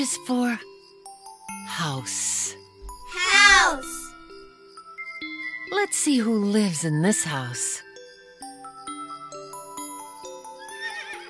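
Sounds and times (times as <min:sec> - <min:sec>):
speech: 0:00.0 - 0:00.7, 0:01.7 - 0:04.0, 0:05.7 - 0:07.9
horse whinny: 0:10.6 - 0:11.2.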